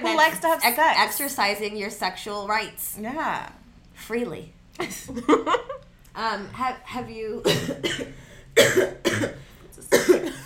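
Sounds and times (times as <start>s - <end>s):
speech: 0.2s - 10.2s
person coughing: 7.4s - 10.4s.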